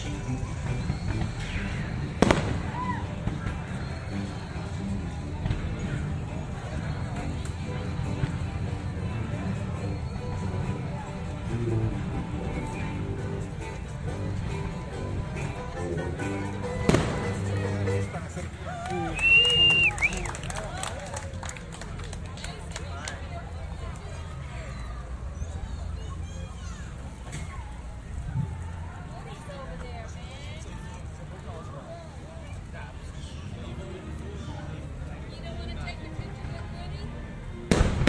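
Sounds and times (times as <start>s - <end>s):
crowd chatter and outdoor voices: 0.0s - 38.0s
fireworks bangs: 0.8s - 3.8s, 16.9s - 18.0s, 37.7s - 38.0s.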